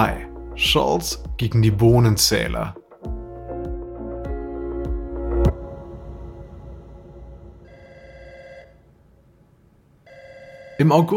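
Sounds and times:
speech: 0.0 - 2.8, 10.8 - 11.1
telephone bell ringing in a home: 7.6 - 8.8, 10.0 - 11.1.

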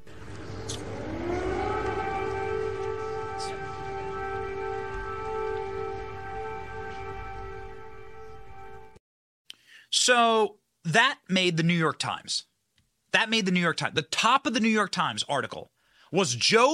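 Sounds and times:
air raid siren in Ukraine wailing: 0.0 - 9.0
speech: 10.0 - 12.5, 13.1 - 16.7.

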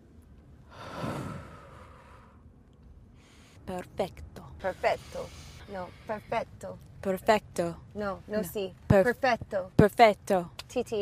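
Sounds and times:
slow deep breath in breathing exercise: 0.6 - 2.5, 3.1 - 3.6
speech: 3.7 - 11.0.

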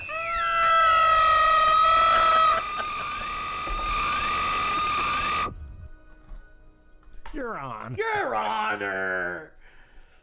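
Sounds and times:
loud high-pitched siren wailing: 0.2 - 5.6
speech: 7.5 - 9.5.

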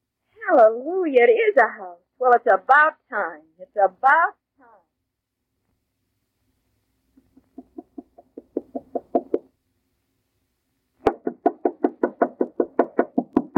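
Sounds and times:
speech: 0.5 - 4.4
rapid knocking on a door: 7.6 - 9.5, 11.1 - 13.5.

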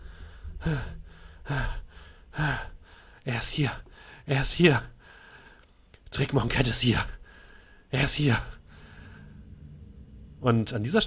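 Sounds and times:
heavy ragged breathing after great exertion: 0.0 - 3.2, 4.9 - 5.7, 7.1 - 10.5
speech: 0.6 - 1.8, 3.2 - 4.9, 6.1 - 7.2, 7.9 - 8.6, 10.4 - 11.0.

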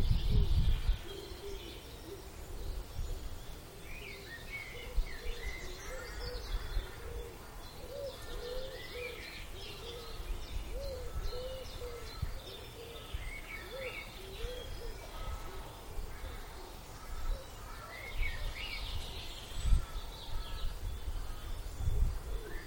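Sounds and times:
blackbirds singing in the dawn chorus in a Wiltshire village: 0.0 - 22.6.

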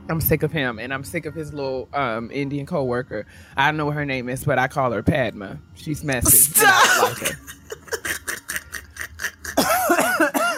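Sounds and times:
speech: 0.1 - 7.6
coughing fit with wheezing hacks: 6.3 - 8.1, 9.5 - 10.5
laughter: 6.6 - 10.5.

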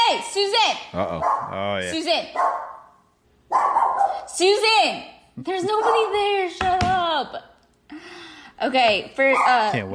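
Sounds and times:
speech: 0.1 - 2.8, 3.5 - 9.9
dog barking at someone outside: 1.2 - 1.6, 2.3 - 4.3, 5.7 - 6.3, 9.3 - 9.8.

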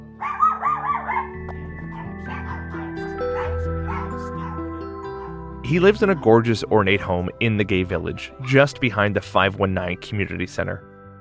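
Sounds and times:
musical backdrop: 0.0 - 11.1
small dogs barking and yipping: 0.2 - 5.4
speech: 5.7 - 10.9.

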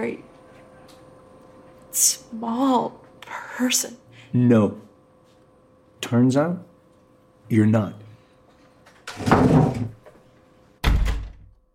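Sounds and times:
speech: 0.0 - 0.3, 2.0 - 3.0, 3.6 - 4.9, 6.0 - 6.7, 7.5 - 8.0, 9.2 - 10.0
door scraping and rustling as it is pushed: 9.1 - 10.0
door shutting with a solid thud: 9.1 - 10.0, 10.8 - 11.5.

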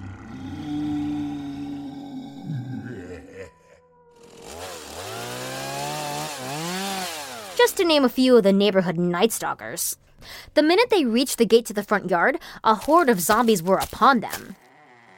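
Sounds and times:
chainsaw engine revving: 4.2 - 8.1, 14.3 - 15.1
speech: 7.6 - 14.6.

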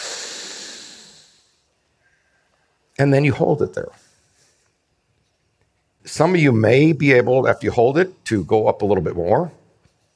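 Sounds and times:
deep inhale during a guided breathing exercise: 0.0 - 2.8
speech: 3.0 - 4.1, 6.0 - 9.6.

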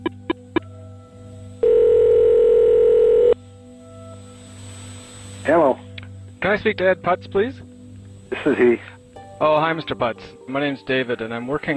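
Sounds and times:
phone ringback tone on an outgoing call to Miami: 1.6 - 3.4
speech: 6.5 - 7.7, 8.4 - 11.7.

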